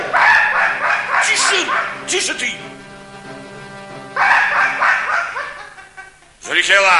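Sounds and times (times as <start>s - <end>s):
large dog barking on a hunt: 0.1s - 2.1s, 4.1s - 5.7s
laughter: 0.7s - 2.1s, 4.2s - 6.6s
speech: 1.2s - 2.9s, 6.5s - 6.9s.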